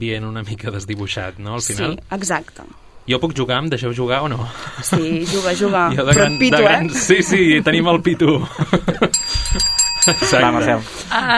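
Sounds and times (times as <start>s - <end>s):
speech: 0.0s - 11.3s
people talking and laughing: 4.4s - 11.3s
small bell rung as a game buzzer: 6.0s - 7.8s, 9.0s - 10.8s.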